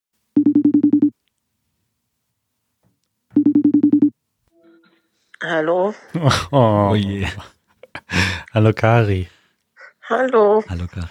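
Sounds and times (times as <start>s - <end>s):
telephone ringing while a call is placed: 0.4s - 1.1s, 3.4s - 4.1s
speech: 5.4s - 7.6s, 8.2s - 9.4s, 10.1s - 11.1s
laughter: 6.2s - 8.4s.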